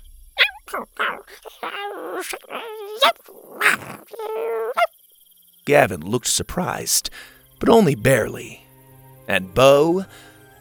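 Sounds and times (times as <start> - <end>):
high-pitched puppy-like chirps and yips of baby dinosaurs: 0.4 - 4.9
speech: 0.7 - 4.9, 5.6 - 8.6, 9.3 - 10.3.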